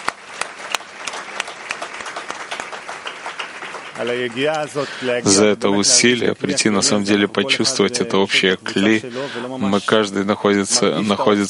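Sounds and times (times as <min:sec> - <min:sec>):
applause from a large audience in a full hall: 0:00.0 - 0:06.2
speech: 0:04.0 - 0:11.4.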